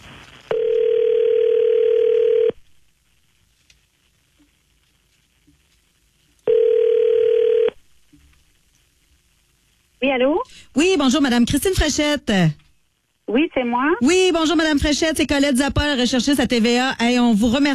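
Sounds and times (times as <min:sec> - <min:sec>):
telephone ringback tone on an outgoing call through the handset: 0:00.5 - 0:02.6, 0:06.5 - 0:07.8
speech: 0:10.1 - 0:12.6, 0:13.3 - 0:17.7.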